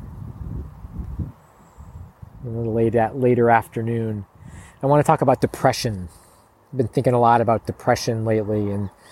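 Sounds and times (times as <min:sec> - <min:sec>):
gusty outdoor wind buffeting the microphone: 0:00.0 - 0:06.2
speech: 0:02.5 - 0:09.1.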